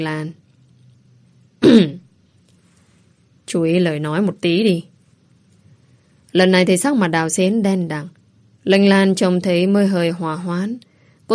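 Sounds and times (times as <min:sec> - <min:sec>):
speech: 0:00.0 - 0:00.4, 0:01.6 - 0:02.0, 0:03.5 - 0:04.9, 0:06.3 - 0:11.3
quiet hum: 0:00.0 - 0:11.3
man clearing his throat: 0:01.6 - 0:02.0.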